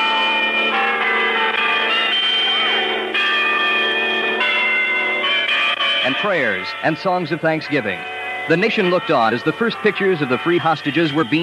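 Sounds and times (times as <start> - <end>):
church bells pealing in celebration: 0.0 - 11.4
speech: 6.2 - 11.4.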